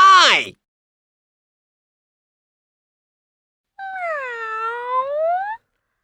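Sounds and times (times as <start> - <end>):
cat meowing: 3.8 - 5.6.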